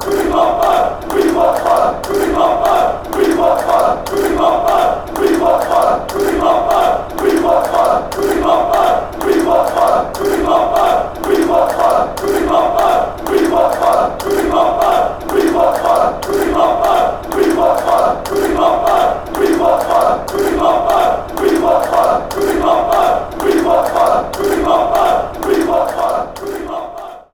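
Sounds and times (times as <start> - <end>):
fans chanting for more: 0.0 - 27.3.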